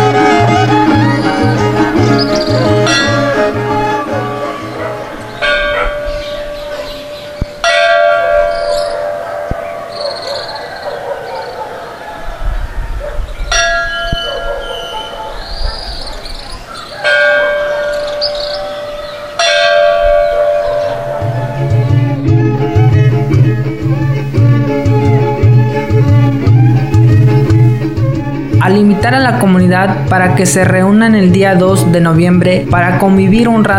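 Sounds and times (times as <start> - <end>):
church bell ringing: 0.0 - 12.3, 13.5 - 25.4
chorus of insects chirping: 0.9 - 7.7, 8.3 - 13.6, 14.2 - 28.4
speech: 29.1 - 33.7.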